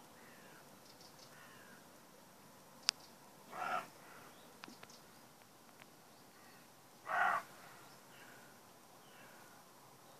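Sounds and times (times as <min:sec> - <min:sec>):
young roe deer buck barking in the morning in a meadow: 0:03.5 - 0:03.9, 0:07.1 - 0:07.5.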